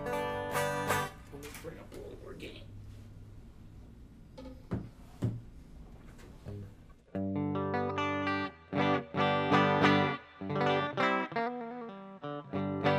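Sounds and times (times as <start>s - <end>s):
clean electric guitar on the treble pickup through an amp: 0.0s - 1.6s, 6.5s - 12.9s.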